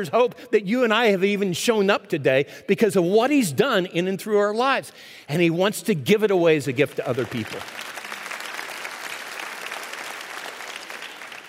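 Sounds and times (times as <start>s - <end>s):
speech: 0.0s - 7.9s
sizable audience applauding: 7.0s - 11.4s.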